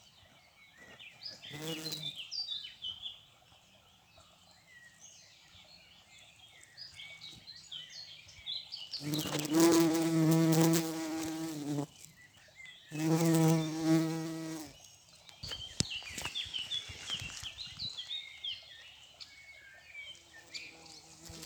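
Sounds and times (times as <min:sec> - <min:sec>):
bumblebee buzzing: 0:01.5 - 0:02.1, 0:09.0 - 0:12.1, 0:12.9 - 0:14.8, 0:20.4 - 0:21.4.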